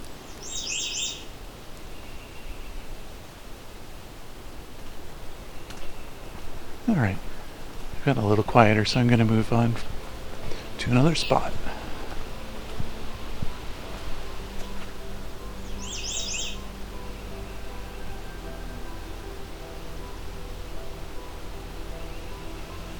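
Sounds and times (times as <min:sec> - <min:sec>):
hiss of wind or running water in swampy woods: 0:00.0 - 0:22.9
Canada Warbler singing in swampy woodland: 0:00.2 - 0:03.0, 0:05.5 - 0:13.2, 0:15.4 - 0:22.9
speech: 0:06.9 - 0:07.3, 0:08.0 - 0:10.0, 0:10.8 - 0:11.8.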